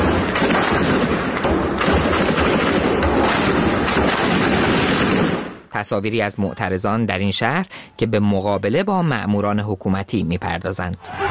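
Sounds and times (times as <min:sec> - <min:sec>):
continuous gunfire: 0:00.0 - 0:05.7
speech: 0:05.8 - 0:11.2.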